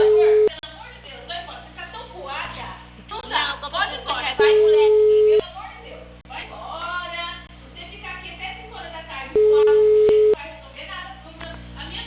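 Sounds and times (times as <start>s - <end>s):
ringback tone on an outgoing phone call: 0.0s - 0.5s, 4.4s - 5.4s, 9.4s - 10.4s
people talking: 0.0s - 12.0s.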